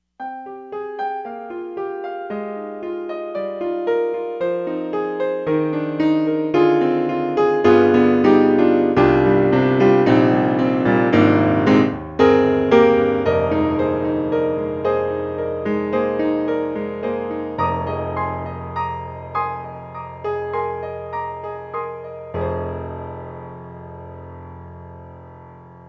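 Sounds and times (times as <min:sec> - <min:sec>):
Yamaha TX1P piano: 0:00.0 - 0:25.8.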